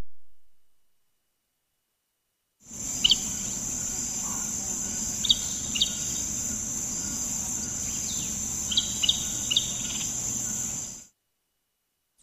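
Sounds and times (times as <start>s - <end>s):
Many-banded Aracari Pteroglossus pluricinctus calling: 2.7s - 11.0s.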